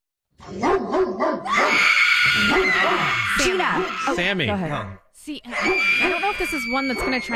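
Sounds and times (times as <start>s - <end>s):
pit bull barking: 0.5s - 1.8s, 2.4s - 3.9s
speech: 2.5s - 7.3s.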